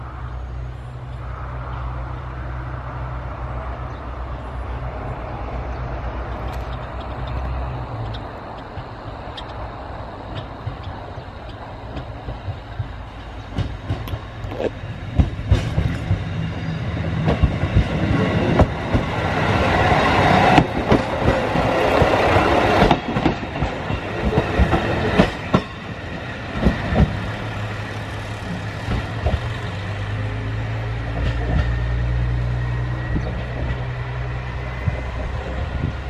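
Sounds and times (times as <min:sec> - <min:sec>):
train engine rumble pulling away from a station: 0:00.0 - 0:36.0
train wheels clickety-clack over the rails: 0:06.2 - 0:30.1, 0:30.9 - 0:32.3, 0:34.7 - 0:36.0.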